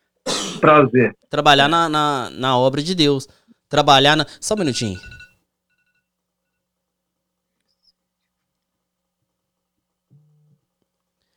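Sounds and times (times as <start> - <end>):
speech: 0.4 - 5.2
phone alarm beeping: 4.5 - 6.0.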